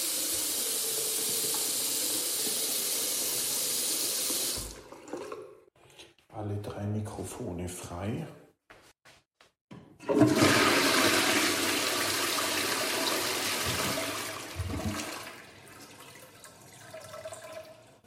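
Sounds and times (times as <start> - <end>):
toilet flushing: 0.0 - 5.7, 10.0 - 18.0
speech: 6.4 - 8.4
water refilling trickle: 15.4 - 18.0.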